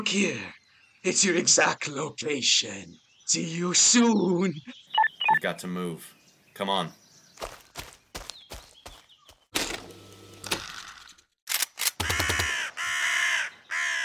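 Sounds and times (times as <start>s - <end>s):
speech: 0.0s - 7.6s
crow cawing with harsh rasping calls: 12.0s - 14.0s.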